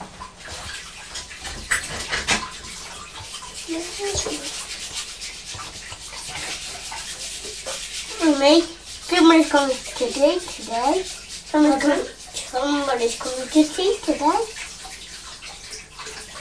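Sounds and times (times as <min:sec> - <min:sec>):
rubbing and scrubbing scrapes while washing: 0:00.0 - 0:16.3
water rushing continuously while washing something clean: 0:00.0 - 0:16.3
speech: 0:03.7 - 0:04.6, 0:08.3 - 0:14.6.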